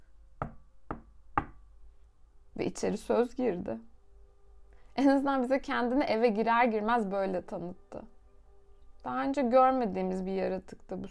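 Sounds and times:
knocks on a door: 0.4 - 1.6
speech: 2.6 - 3.9, 5.0 - 8.1, 9.0 - 11.1.

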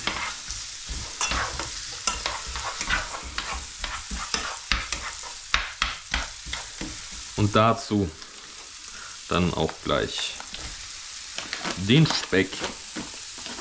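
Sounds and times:
spatula stirring onions scraping against the pan: 0.0 - 7.4, 10.5 - 13.5
onions frying in hot fat: 0.0 - 13.5
speech: 7.4 - 8.2, 9.3 - 10.4, 11.8 - 13.1.

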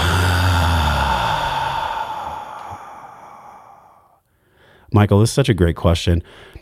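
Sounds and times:
deep belly breath inhale and exhale: 0.0 - 4.9, 6.2 - 6.5
speech: 4.9 - 6.5.

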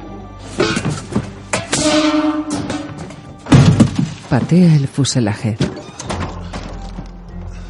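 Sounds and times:
metal basin thrown down in an airplane cockpit: 0.6 - 4.8
speech: 4.3 - 5.8.

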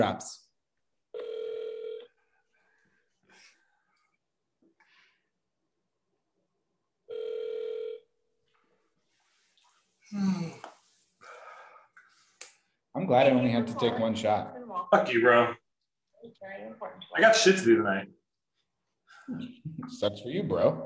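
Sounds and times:
speech: 0.0 - 0.4, 10.1 - 10.7, 13.0 - 15.6, 16.2 - 18.2, 19.3 - 20.8
phone line ringback tone: 1.2 - 2.1, 7.1 - 8.1.

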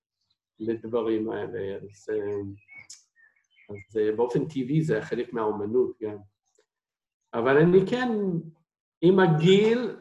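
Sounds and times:
common blackbird singing: 0.2 - 6.2
speech: 0.6 - 3.0, 3.7 - 6.3, 7.3 - 9.9.

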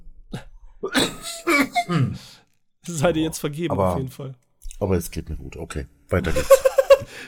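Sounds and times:
harsh coughing: 0.8 - 2.4
speech: 1.9 - 2.3, 2.9 - 7.2
laughter: 6.2 - 7.2.

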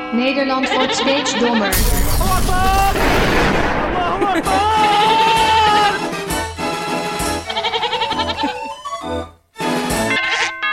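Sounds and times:
speech: 0.1 - 5.2
goat bleating: 0.5 - 1.8, 4.6 - 6.1, 7.3 - 8.9, 10.1 - 10.6
sharp cracks: 1.8 - 4.6
laughter: 3.9 - 6.1, 8.0 - 8.9.

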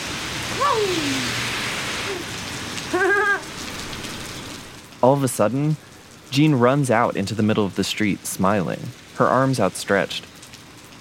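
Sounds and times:
heavy rain pouring down: 0.0 - 10.9
speech: 0.6 - 1.4, 5.0 - 10.3.

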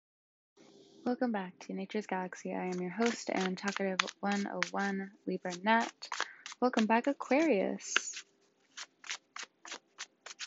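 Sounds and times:
speech: 1.0 - 8.3
deck of tarot cards being shuffled with papery riffles: 2.6 - 10.4.

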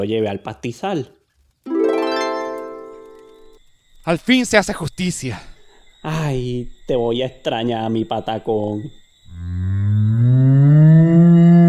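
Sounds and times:
speech: 0.0 - 1.2, 4.0 - 9.5
cow mooing: 9.3 - 11.6.

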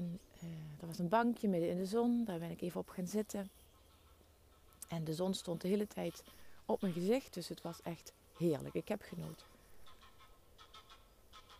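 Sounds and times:
low steady outdoor noise: 0.0 - 11.5
speech: 0.8 - 3.6, 4.9 - 9.5
geese honking while flying past: 3.7 - 11.5.

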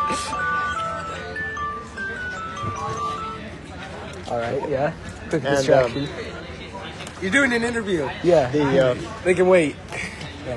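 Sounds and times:
ice cream truck jingle passing by: 0.0 - 4.1
street noise: 0.0 - 10.5
speech: 4.3 - 6.4, 7.2 - 10.5.

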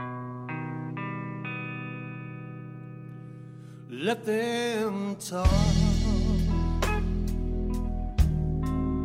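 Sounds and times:
speech: 3.9 - 6.2
blues song played by a backing band: 5.4 - 9.0.

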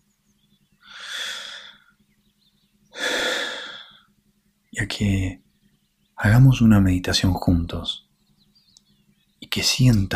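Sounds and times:
deep breathing during a guided meditation: 0.8 - 2.0, 2.9 - 4.1
speech: 4.8 - 5.4, 6.2 - 8.1, 9.5 - 10.1.

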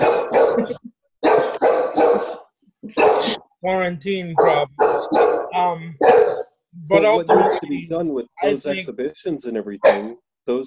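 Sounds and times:
dog barking: 0.0 - 2.4, 3.0 - 3.4, 4.4 - 7.8, 8.4 - 8.8, 9.8 - 10.2
speech: 3.6 - 6.2, 6.8 - 10.6.

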